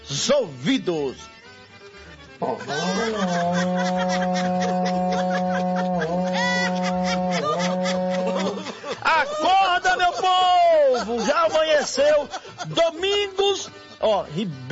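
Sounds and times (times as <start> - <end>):
speech: 0.1 - 1.4, 2.4 - 6.2, 11.0 - 14.7
berrante cattle horn blown in São Paulo Brazil to wake people: 2.4 - 8.7
laughter: 2.4 - 14.1.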